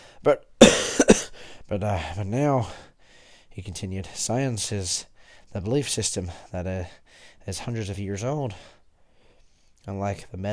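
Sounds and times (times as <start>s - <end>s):
speech: 0.2s - 2.9s, 3.6s - 8.8s, 9.8s - 10.5s
man coughing harshly: 0.6s - 1.4s.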